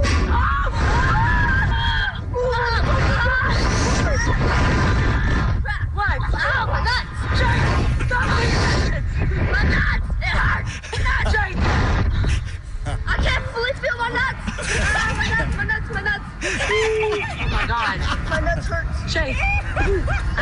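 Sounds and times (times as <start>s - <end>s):
constant roar of rushing wind on a slingshot amusement ride: 0.0s - 20.3s
boy screaming and yelling on a slingshot amusement ride: 0.2s - 11.3s
laughter: 2.4s - 4.5s, 14.4s - 15.8s, 16.4s - 20.3s.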